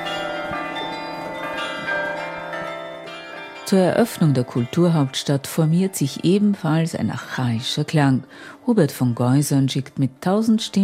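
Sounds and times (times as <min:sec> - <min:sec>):
man-sized iron bell ringing a deep tone in a snowy landscape: 0:00.0 - 0:08.2
speech: 0:03.7 - 0:10.8.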